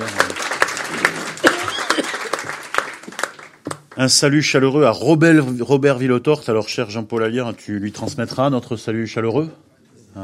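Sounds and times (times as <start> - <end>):
audience at an assembly applauding local mayors: 0.0 - 4.2
speech: 4.0 - 10.2.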